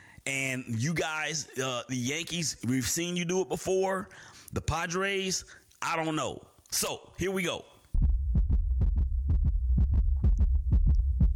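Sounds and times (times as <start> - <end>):
speech: 0.2 - 7.7
fast heartbeat: 8.0 - 11.3
low droning throb: 8.0 - 11.3.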